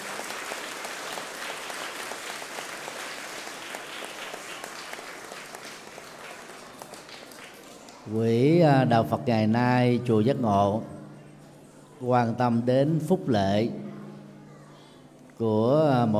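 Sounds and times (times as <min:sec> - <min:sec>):
large audience applauding: 0:00.0 - 0:08.1
speech: 0:08.1 - 0:10.9, 0:12.0 - 0:13.8, 0:15.4 - 0:16.1.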